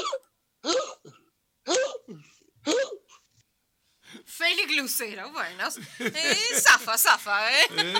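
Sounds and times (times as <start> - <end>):
sharp hiccups with a coughing edge and short gasps: 0.0 - 3.3
speech: 4.5 - 7.9
laughter: 5.6 - 7.9.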